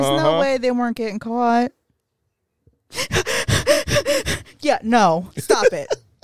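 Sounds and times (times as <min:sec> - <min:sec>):
speech: 0:00.0 - 0:01.8, 0:02.9 - 0:06.0
voice imitating loud heavy breathing: 0:02.9 - 0:04.7
laughter: 0:05.4 - 0:06.2.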